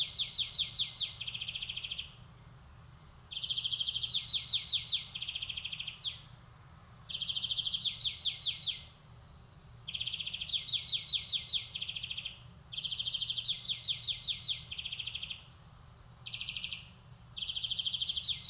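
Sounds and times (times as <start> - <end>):
European greenfinch Chloris chloris song: 0.0 - 2.2, 3.3 - 6.3, 7.1 - 8.9, 9.9 - 15.6, 16.2 - 18.4.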